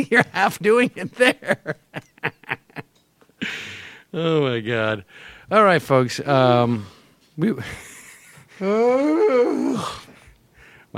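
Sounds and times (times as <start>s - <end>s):
speech: 0.0s - 1.8s, 4.1s - 7.9s, 8.6s - 10.0s
person yawning with a stretch: 8.6s - 10.3s.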